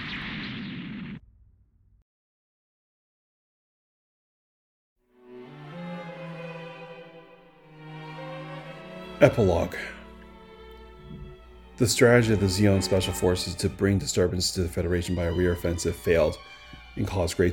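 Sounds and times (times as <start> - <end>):
massive mobile armor exploding in a battle drama: 0.0 - 1.9
sustained music: 5.0 - 17.5
speech: 9.2 - 10.0, 11.8 - 17.5.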